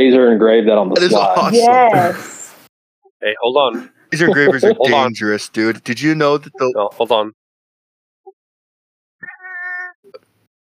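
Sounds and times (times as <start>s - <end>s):
speech: 0.0s - 2.3s, 3.2s - 7.4s
laughter: 1.0s - 2.3s, 3.7s - 5.4s
house cat meowing: 9.2s - 10.0s.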